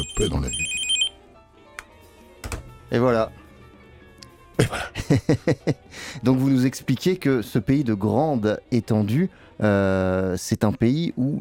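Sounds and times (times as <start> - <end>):
short electronic telephone ring: 0.0 - 1.2
speech: 0.2 - 0.7, 2.9 - 3.4, 4.6 - 11.3
laughter: 4.6 - 5.8.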